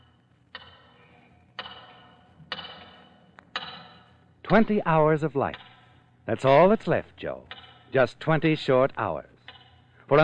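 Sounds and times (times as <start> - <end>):
big tower clock ticking: 0.5 - 1.0, 1.6 - 10.2
speech: 4.5 - 5.6, 6.3 - 9.3, 10.1 - 10.2.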